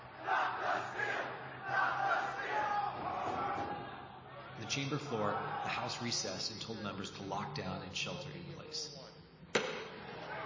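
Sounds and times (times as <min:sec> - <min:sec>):
large crowd of rioters shouting inside the Capitol: 0:00.0 - 0:06.0, 0:09.9 - 0:10.4
speech: 0:04.7 - 0:09.1.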